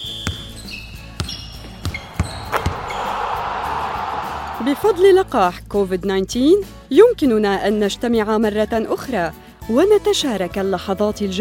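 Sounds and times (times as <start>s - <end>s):
basketball bouncing on a hard court during a basketball game: 0.0s - 3.0s
shoe squeaks during a basketball game: 0.0s - 3.2s
crowd noise at a basketball game: 1.8s - 5.3s
speech: 4.6s - 11.4s.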